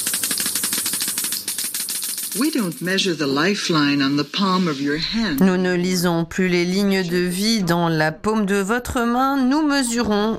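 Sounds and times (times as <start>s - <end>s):
Geiger counter clicking: 0.0s - 3.9s
speech: 2.3s - 10.3s.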